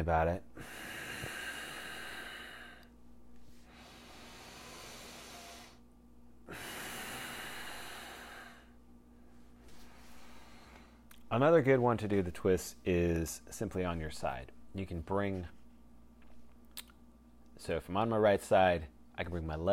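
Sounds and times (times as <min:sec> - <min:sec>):
speech: 0:00.0 - 0:01.0, 0:11.3 - 0:15.6, 0:17.6 - 0:19.7
deep exhaling breaths during a guided body-positioning exercise: 0:00.6 - 0:02.9, 0:03.5 - 0:05.9, 0:06.5 - 0:08.8, 0:09.6 - 0:11.0.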